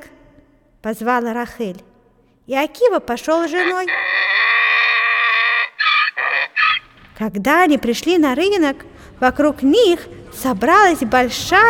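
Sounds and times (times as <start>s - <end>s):
speech: 0.8s - 1.9s, 2.5s - 4.3s, 7.2s - 11.6s
donkey braying: 3.4s - 7.0s.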